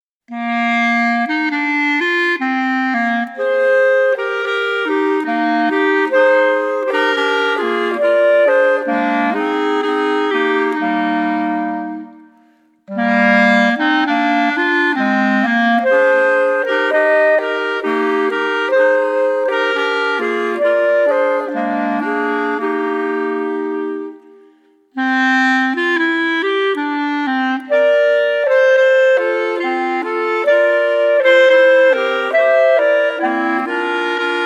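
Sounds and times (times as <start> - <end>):
clarinet trio playing a yodel tune: 0.3 - 34.4.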